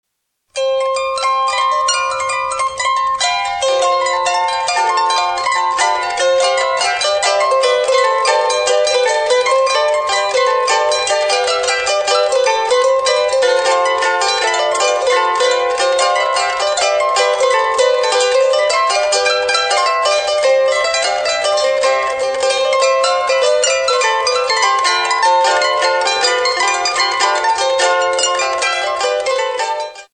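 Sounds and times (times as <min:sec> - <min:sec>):
valiha playing: 0:00.5 - 0:30.1.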